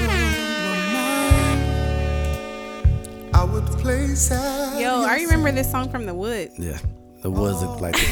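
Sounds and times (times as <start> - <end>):
air horn blasts: 0.0 - 3.0
speech: 3.8 - 8.1.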